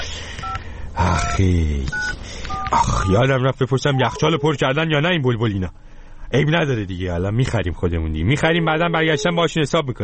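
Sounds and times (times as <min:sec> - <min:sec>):
telephone keypad tones: 0:00.4 - 0:03.2
speech: 0:01.0 - 0:10.0.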